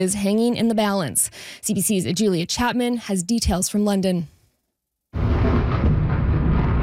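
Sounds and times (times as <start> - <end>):
speech: 0.0 - 4.4
deep roaring rumble: 5.2 - 6.8
missile explosion in a city: 5.2 - 6.8.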